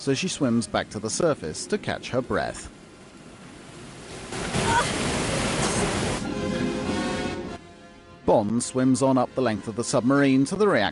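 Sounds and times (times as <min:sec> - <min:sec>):
speech: 0:00.0 - 0:02.8, 0:08.3 - 0:10.9
water rushing and sloshing as a submarine room floods: 0:00.0 - 0:07.6.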